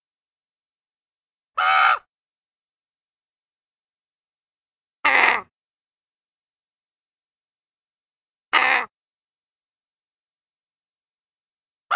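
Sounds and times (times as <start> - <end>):
raven cawing: 1.6 - 2.1, 5.0 - 5.5, 8.5 - 8.9.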